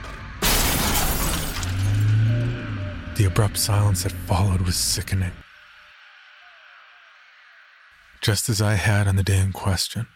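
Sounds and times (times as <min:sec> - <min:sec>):
metal crunching in a crash: 0:00.1 - 0:02.5
debris rattling: 0:00.4 - 0:02.3
glass shattering in a crash: 0:00.4 - 0:02.3
speech: 0:03.2 - 0:05.4, 0:08.2 - 0:10.1.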